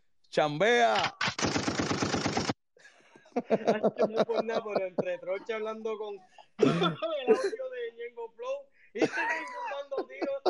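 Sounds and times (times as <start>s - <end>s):
speech: 0.4s - 1.6s, 3.4s - 10.4s
gunshots: 0.9s - 2.6s
automatic gunfire: 1.0s - 2.6s
laughter: 2.9s - 10.4s.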